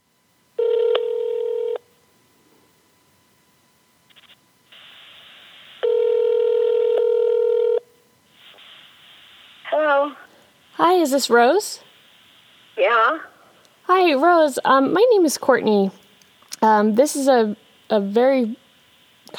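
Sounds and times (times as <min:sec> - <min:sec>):
electronic telephone line tones while dialing: 0:00.6 - 0:01.8, 0:04.1 - 0:07.8
quieter hiss: 0:04.1 - 0:05.8, 0:08.3 - 0:13.9
speech: 0:10.9 - 0:11.8, 0:12.8 - 0:13.3, 0:13.9 - 0:16.0, 0:16.6 - 0:18.6.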